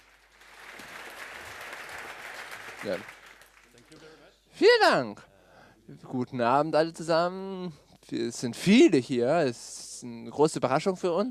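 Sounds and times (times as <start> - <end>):
audience applause greeting performers introduced on stage: 0.0 - 4.0
speech: 2.8 - 3.2, 3.9 - 5.3, 5.9 - 11.2.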